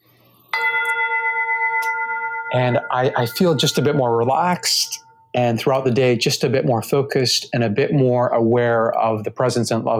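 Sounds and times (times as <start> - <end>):
meditation timer chime ringing: 0.5 - 5.6
speech: 2.5 - 9.9.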